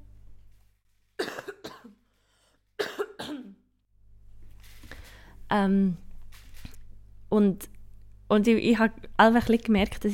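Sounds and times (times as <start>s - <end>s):
faint hum: 0.0s - 10.1s
person coughing: 1.2s - 2.1s, 2.8s - 3.7s
speech: 5.5s - 6.0s, 7.4s - 7.7s, 8.3s - 10.1s.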